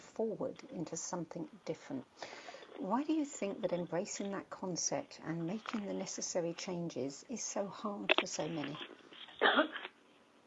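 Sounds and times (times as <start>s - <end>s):
speech: 0.2s - 9.9s
cough through a phone line: 9.4s - 9.9s.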